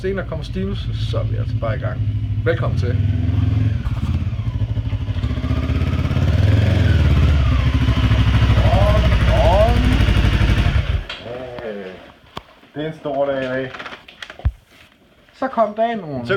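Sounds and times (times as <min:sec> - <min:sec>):
speech: 0:00.0 - 0:04.1, 0:12.8 - 0:13.9, 0:15.4 - 0:16.3
motorcycle engine rumbling: 0:00.0 - 0:12.4.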